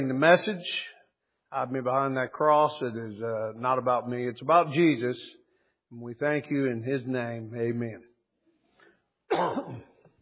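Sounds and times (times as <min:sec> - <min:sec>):
speech: 0:00.0 - 0:00.9, 0:01.5 - 0:08.1, 0:09.3 - 0:09.9
rough cough from a person with a lingering cough since COVID: 0:09.3 - 0:10.0.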